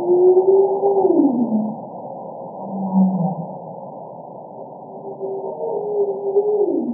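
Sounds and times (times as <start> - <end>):
humpback whale singing underwater: 0.0 - 2.0, 2.6 - 3.7, 4.9 - 6.9.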